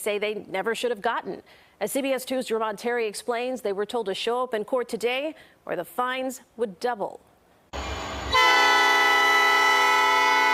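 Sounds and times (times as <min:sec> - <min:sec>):
speech: 0:00.0 - 0:07.3
train rumbling in a south suburban town: 0:07.8 - 0:10.1
train horn blasting: 0:07.8 - 0:10.5.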